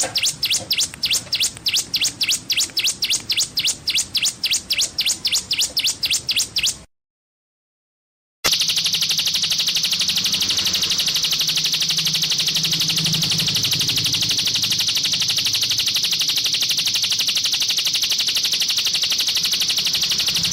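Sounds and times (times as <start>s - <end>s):
streaked spiderhunter song of high chips and buzzy trill: 0.0s - 6.9s, 8.5s - 20.5s.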